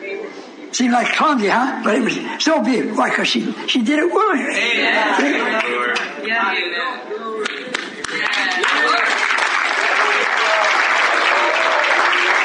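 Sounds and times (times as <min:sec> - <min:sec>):
speech: 0:00.7 - 0:07.5
audience applause at a church service: 0:07.4 - 0:12.4.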